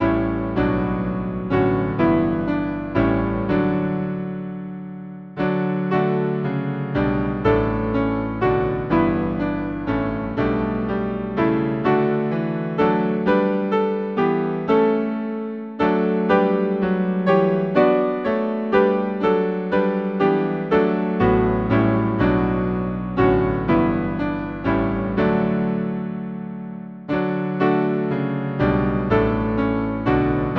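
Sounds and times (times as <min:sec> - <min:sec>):
hymn on piano: 0:00.0 - 0:30.5.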